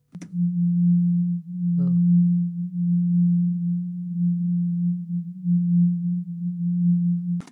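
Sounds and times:
pulsing low hum tone: 0.0s - 7.5s
clicks: 0.1s - 0.4s, 7.2s - 7.5s.

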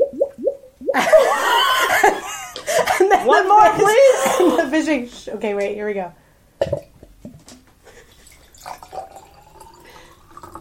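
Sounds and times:
laughter: 1.0s - 4.8s
speech: 3.3s - 6.7s
water gurgling from a gurgle pot: 8.2s - 10.5s.

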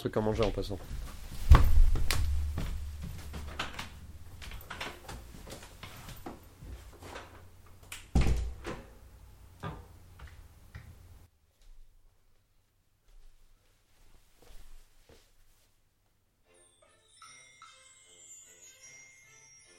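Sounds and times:
speech: 0.0s - 1.2s
door knocking and rattling while being handled: 1.0s - 5.1s
door thudding shut: 1.4s - 4.6s, 8.1s - 8.9s.

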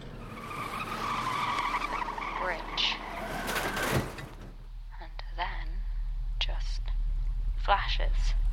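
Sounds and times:
car tires skidding and squealing: 0.0s - 4.5s
low car engine rumble: 0.0s - 8.5s.

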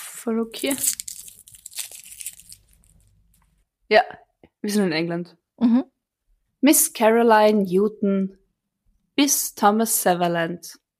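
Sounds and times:
speech: 0.2s - 1.1s, 3.9s - 6.0s, 6.6s - 8.4s, 9.2s - 10.8s
candy wrapper crinkling: 0.4s - 3.6s
crunchy bites into a chocolate mouse sweet: 0.6s - 3.4s.

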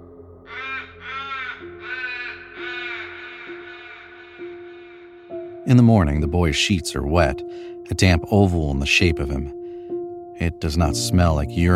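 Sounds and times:
crows cawing: 0.4s - 5.3s
speech: 5.7s - 9.6s, 10.4s - 11.7s.

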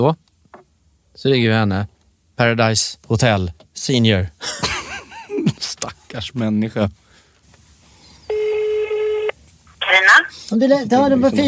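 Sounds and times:
speech: 0.0s - 0.2s, 1.2s - 4.7s, 5.4s - 7.0s, 9.9s - 11.4s
loud buzzy electronic telephone tone: 8.3s - 9.4s.

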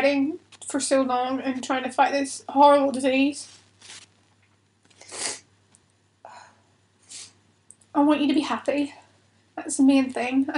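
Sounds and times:
speech: 0.0s - 4.0s, 8.0s - 9.0s, 9.6s - 10.5s
faint steady hum: 0.0s - 10.5s
nose being blown: 5.0s - 5.4s.

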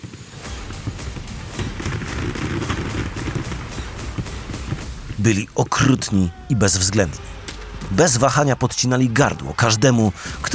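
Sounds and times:
dense barrage of booming cannon fire: 0.0s - 5.2s
speech: 5.2s - 7.3s, 7.9s - 10.5s.

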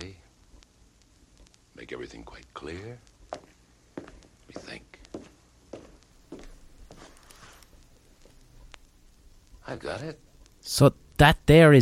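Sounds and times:
speech: 1.9s - 3.1s, 9.7s - 11.8s
footsteps on a hard floor on an old stereo record: 3.3s - 8.4s.

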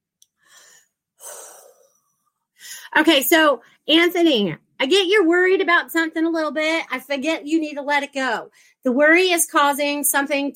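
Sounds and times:
deep breath with a sniff, inhale and airy exhale: 0.4s - 2.9s
speech: 2.9s - 10.5s.

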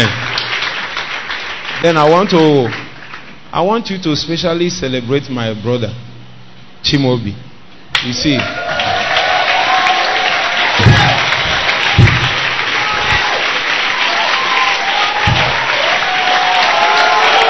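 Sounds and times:
audience applause at a church service: 0.0s - 2.3s, 8.4s - 17.4s
speech: 1.8s - 2.8s, 3.5s - 6.0s, 6.9s - 7.4s, 8.0s - 8.6s
cheers: 8.3s - 17.4s
low thumps: 10.7s - 13.3s, 15.2s - 15.7s.

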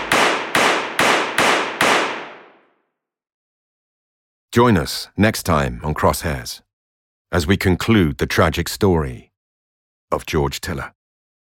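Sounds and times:
gunshots from a handgun: 0.0s - 2.6s
speech: 4.6s - 6.6s, 7.3s - 9.3s, 10.1s - 11.0s.

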